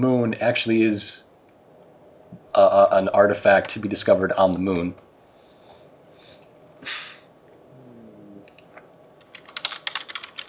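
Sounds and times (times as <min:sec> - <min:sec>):
speech: 0:00.0 - 0:01.3, 0:02.6 - 0:05.1
faint typing on a computer keyboard: 0:08.5 - 0:10.4.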